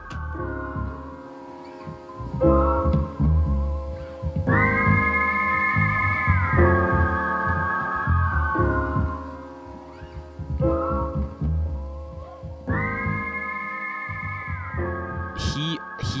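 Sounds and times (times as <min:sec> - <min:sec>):
mellow music backing with bass and percussion: 0:00.0 - 0:05.0, 0:06.4 - 0:13.3
high steady whistled melody: 0:00.0 - 0:11.4, 0:12.1 - 0:16.1.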